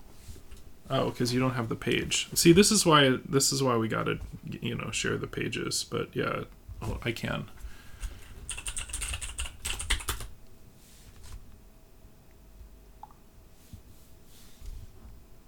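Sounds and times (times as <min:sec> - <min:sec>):
quiet hum: 0:00.0 - 0:15.4
speech: 0:00.9 - 0:07.6
computer keyboard typing: 0:08.0 - 0:10.3.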